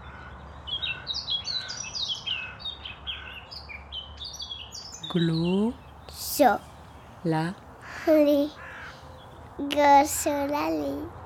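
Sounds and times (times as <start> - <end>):
birds chirping: 0.0 - 11.2
low hum: 4.9 - 11.2
speech: 5.1 - 8.6, 9.6 - 11.2.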